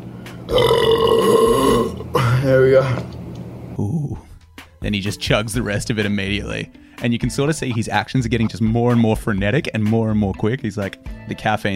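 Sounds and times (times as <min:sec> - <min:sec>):
speech: 0:00.5 - 0:00.8, 0:02.5 - 0:03.2, 0:04.8 - 0:11.7
person burping with a deep rumbling tone: 0:00.5 - 0:02.4.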